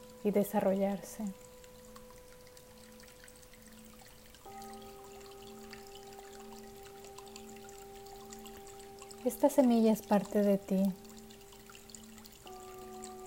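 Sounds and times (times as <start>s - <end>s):
water pouring in a steady quiet stream: 0.0s - 13.2s
speech: 0.2s - 1.5s, 9.2s - 11.0s.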